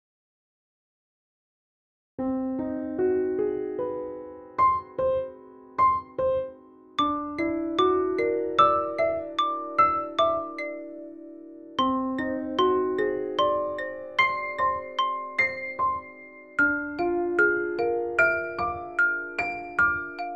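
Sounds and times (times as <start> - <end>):
piano: 2.2 - 20.3
xylophone: 7.0 - 10.9, 11.8 - 20.3.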